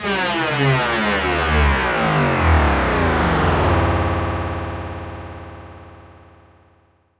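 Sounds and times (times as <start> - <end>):
robotic riser: 0.0 - 5.4.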